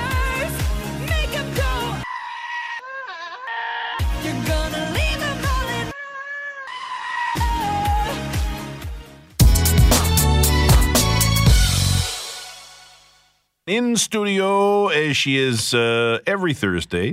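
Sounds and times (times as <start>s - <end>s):
driving pop track with a thumping beat: 0.0s - 2.0s, 4.0s - 5.7s, 7.4s - 12.6s
goats bleating in place of a singer's voice: 2.0s - 4.1s, 5.8s - 8.1s
speech: 13.7s - 17.1s.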